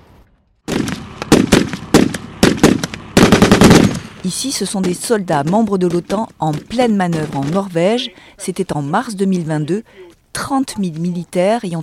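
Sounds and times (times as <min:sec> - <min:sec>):
heavy guns of Russian Northern Fleet ships firing during combat training: 0:00.7 - 0:08.0
speech: 0:04.2 - 0:11.8.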